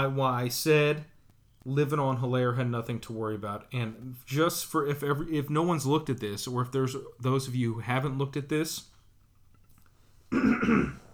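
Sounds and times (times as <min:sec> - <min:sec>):
speech: 0:00.0 - 0:08.9, 0:10.3 - 0:11.0
person clearing throat: 0:10.3 - 0:11.1.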